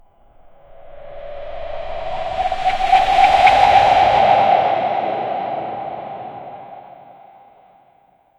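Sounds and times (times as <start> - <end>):
whoosh with echo trail: 0.0 - 7.7.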